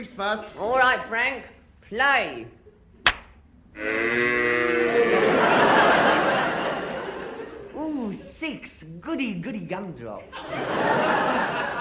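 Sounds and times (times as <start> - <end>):
speech: 0.0 - 2.6, 3.8 - 5.6, 8.0 - 11.6
sharp knock: 3.0 - 3.4
cow mooing long and loud: 3.8 - 5.1
laughter: 4.9 - 7.8, 10.4 - 11.7.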